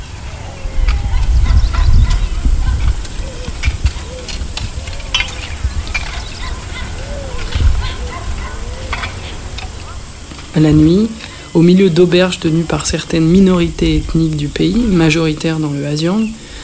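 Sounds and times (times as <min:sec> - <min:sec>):
bird and fowl calls in a roadside jungle: 0:00.0 - 0:13.3
low rumble: 0:00.0 - 0:15.6
steady insect hiss in a roadside jungle: 0:00.0 - 0:16.6
speech: 0:10.6 - 0:16.4.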